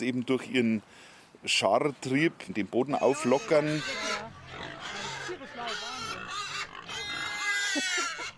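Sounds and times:
speech: 0:00.0 - 0:04.4
piglets grunting and squealing while suckling at a sow: 0:03.0 - 0:08.3.

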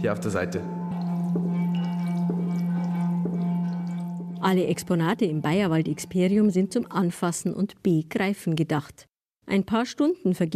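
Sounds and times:
speech: 0:00.0 - 0:01.5, 0:04.4 - 0:10.5
rubbed metal bowl humming: 0:00.6 - 0:07.7.

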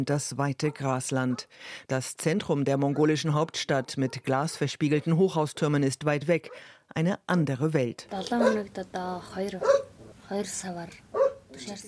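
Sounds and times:
speech: 0:00.0 - 0:11.8
dog barking at a ger tent settlement in Mongolia: 0:00.7 - 0:01.5, 0:08.4 - 0:08.7, 0:09.6 - 0:10.0, 0:11.1 - 0:11.5.

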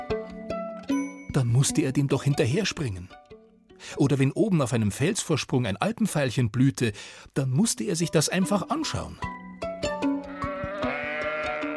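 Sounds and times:
speech: 0:01.3 - 0:03.2, 0:03.8 - 0:09.3
flock of sheep bleating high up in the mountains: 0:10.2 - 0:11.7.

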